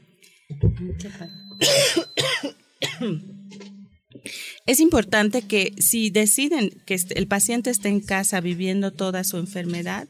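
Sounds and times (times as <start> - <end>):
speech: 0.6 - 2.0, 3.0 - 3.3, 4.7 - 10.0
person coughing with harsh explosive coughs: 1.6 - 3.3
raspy throat-clearing: 1.6 - 3.4.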